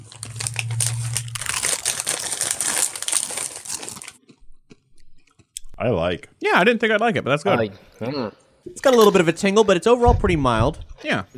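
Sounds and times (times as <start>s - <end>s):
crunching Doritos tortilla chips: 0.0s - 5.6s
speech: 5.8s - 11.3s.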